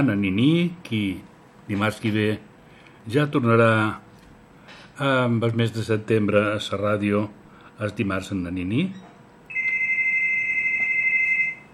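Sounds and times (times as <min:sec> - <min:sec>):
speech: 0:00.0 - 0:02.5, 0:03.1 - 0:04.0, 0:05.0 - 0:09.0
faint hum: 0:00.0 - 0:11.7
telephone ringing with a high electronic tone: 0:09.5 - 0:11.7.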